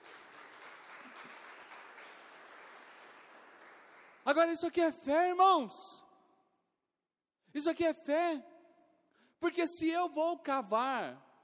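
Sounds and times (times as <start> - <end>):
church audience applauding: 0.0 - 4.6
speech: 4.3 - 6.0, 7.6 - 8.5, 9.4 - 11.2.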